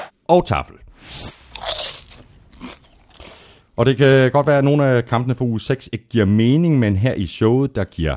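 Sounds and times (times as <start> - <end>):
speech: 0.3 - 1.4, 3.8 - 8.1
popcorn being crunched and chewed: 1.5 - 3.6.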